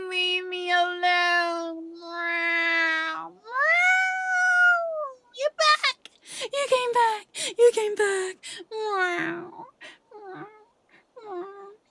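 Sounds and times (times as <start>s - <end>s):
person imitating cat meowing: 0.6s - 5.2s, 8.8s - 10.6s
person speaking: 5.4s - 9.5s.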